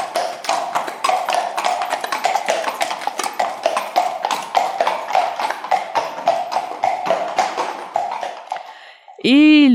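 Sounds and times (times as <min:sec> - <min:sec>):
horse hooves clip-clopping: 0:00.0 - 0:08.8
speech: 0:09.2 - 0:09.7.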